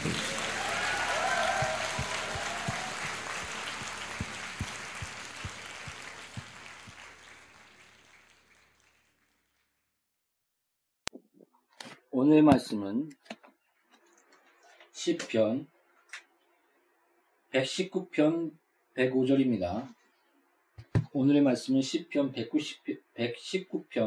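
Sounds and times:
audience applauding: 0.0s - 9.7s
speech: 12.2s - 13.3s, 15.0s - 16.2s, 17.5s - 20.0s, 21.2s - 24.0s.

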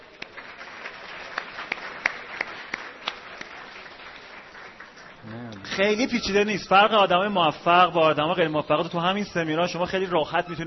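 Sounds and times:
audience at a seminar clapping: 0.0s - 6.8s
sharper evenly spaced claps above the crowd: 0.1s - 5.6s
speech: 5.8s - 10.6s.

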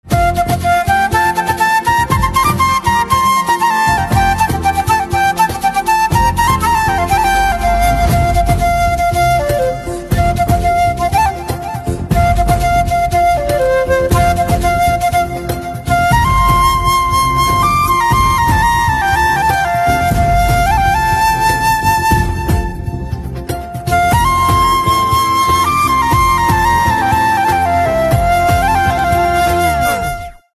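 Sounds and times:
patriotic flute instrumental ringtone: 0.0s - 30.5s.

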